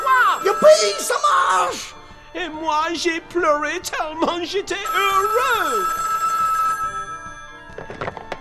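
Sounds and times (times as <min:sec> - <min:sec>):
telephone ringing with a bright electronic tone: 0:00.0 - 0:01.8, 0:04.8 - 0:08.2
speech: 0:00.6 - 0:06.1.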